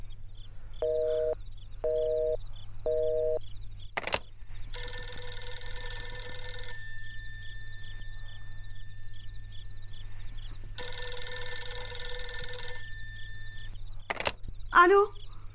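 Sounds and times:
faint repeating pulses: 0.0s - 15.5s
telephone ringing unanswered: 0.8s - 3.4s, 4.7s - 14.4s
speech: 14.8s - 15.2s.

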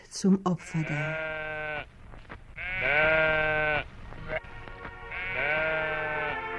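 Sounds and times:
speech: 0.2s - 1.3s
sheep bleating: 0.6s - 1.9s, 2.6s - 6.5s.

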